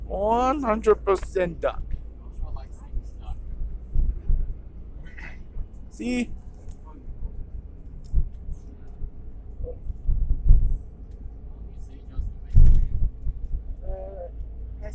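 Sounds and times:
deep vehicle engine rumble in a dark tunnel under the Singapore River: 0.0s - 14.9s
speech: 0.1s - 1.9s, 6.0s - 6.4s.

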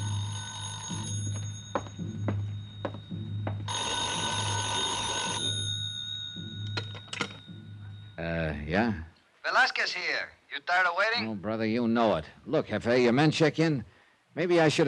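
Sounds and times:
old-fashioned telephone bell ringing: 0.0s - 8.3s
speech: 8.7s - 14.8s.

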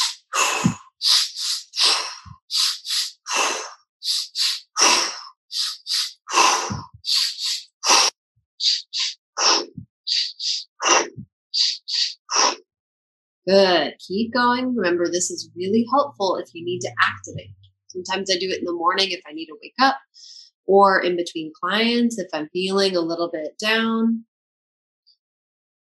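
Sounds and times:
sharp inhales and big exhales in a breathing exercise: 0.0s - 12.6s
speech: 13.5s - 20.1s, 20.7s - 24.3s.

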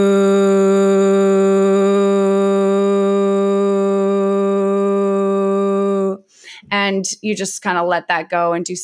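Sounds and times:
deep low voiced voo hum during a vagus-nerve breathing exercise: 0.0s - 6.2s
speech: 6.9s - 8.8s.

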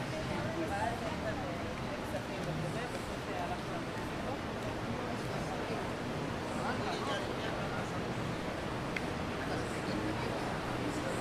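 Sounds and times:
low traffic rumble: 0.0s - 11.2s
street chatter: 0.0s - 11.2s.

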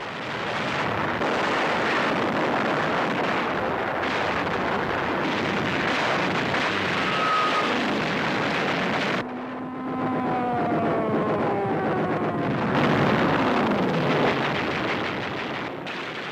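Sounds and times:
Japanese bomber engines droning overhead at dawn over Pearl Harbor: 0.0s - 16.3s.

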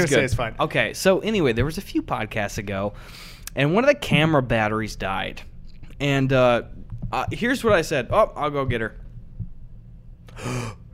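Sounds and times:
speech: 0.0s - 9.0s, 10.4s - 10.8s
low hum: 0.0s - 10.9s
person gasping: 10.3s - 10.9s.

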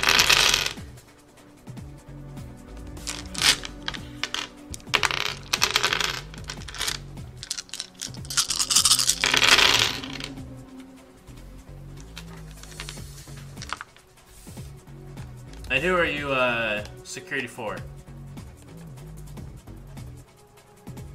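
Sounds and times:
handful of dice rattling and clattering: 0.0s - 0.8s, 3.0s - 10.4s, 12.0s - 13.9s
speech: 15.8s - 17.9s.

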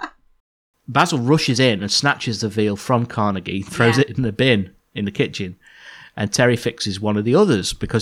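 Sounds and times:
speech: 0.9s - 8.0s
human voice imitating a cat choking: 3.6s - 4.0s.

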